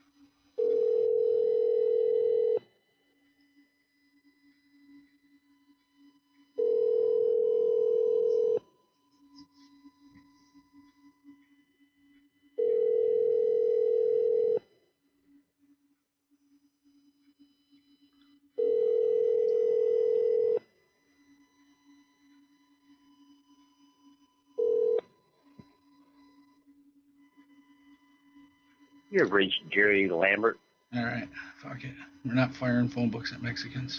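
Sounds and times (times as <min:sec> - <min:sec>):
telephone ringback tone of a call ringing out: 0:00.6 - 0:02.6, 0:06.6 - 0:08.6, 0:12.6 - 0:14.6, 0:18.6 - 0:20.6, 0:24.6 - 0:25.1
speech: 0:29.1 - 0:33.9.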